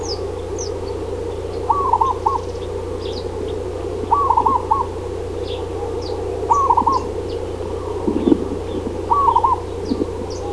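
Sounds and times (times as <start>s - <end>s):
constant low hum: 0.0s - 10.5s
zebra dove trilled coo phrases: 0.0s - 10.5s.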